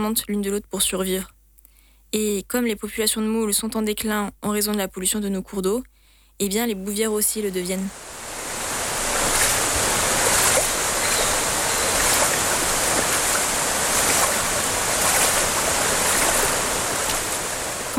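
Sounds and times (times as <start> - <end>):
speech: 0.0 - 1.4, 2.1 - 8.3
flowing river water rushing: 7.9 - 17.9.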